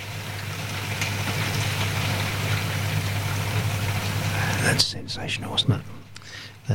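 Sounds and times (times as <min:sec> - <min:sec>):
low constant hum: 0:00.0 - 0:06.7
spring rain hitting windows of a studio building: 0:00.0 - 0:06.7
speech: 0:04.8 - 0:05.9.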